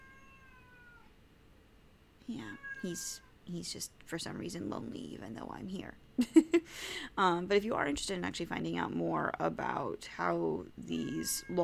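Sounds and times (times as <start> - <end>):
cat meowing: 0.0 - 1.1, 2.5 - 3.3
steady low hum: 0.0 - 11.6
speech: 2.3 - 11.6.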